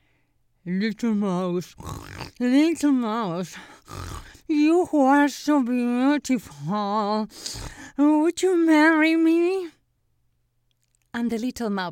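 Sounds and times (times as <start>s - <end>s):
speech: 0.6s - 9.8s, 11.1s - 11.8s
voice imitating pig oinking grunts: 1.7s - 2.5s, 3.8s - 4.5s.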